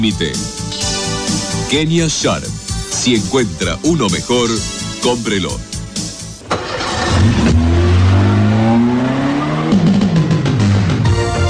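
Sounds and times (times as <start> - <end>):
speech: 0.0 - 0.8, 1.7 - 5.7
Fiat car engine accelerating and revving: 6.3 - 11.4.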